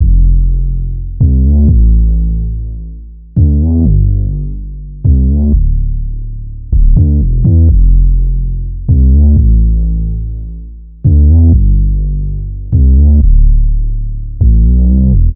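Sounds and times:
synth bass loop in A minor at 125 BPM: 0.0s - 15.3s.

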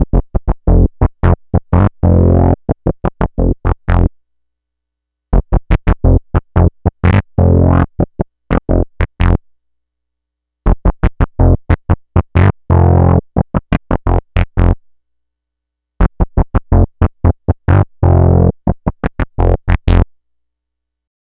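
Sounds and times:
synth bass loop: 0.2s - 4.1s, 5.4s - 9.4s, 10.7s - 14.8s, 16.1s - 20.1s.

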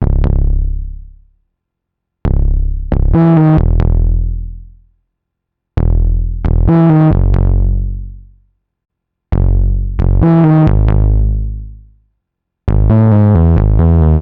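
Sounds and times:
synth bass loop: 0.0s - 1.2s, 2.3s - 4.8s, 5.8s - 8.4s, 9.3s - 12.0s, 12.7s - 14.2s.

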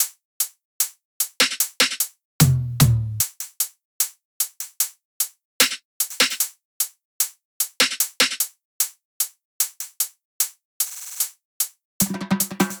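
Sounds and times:
drum top loop at 150 BPM: 2.4s - 3.3s, 12.0s - 12.7s.

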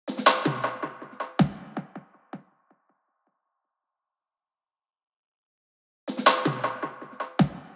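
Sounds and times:
pop percussion drum loop: 0.1s - 2.0s, 6.1s - 7.7s.

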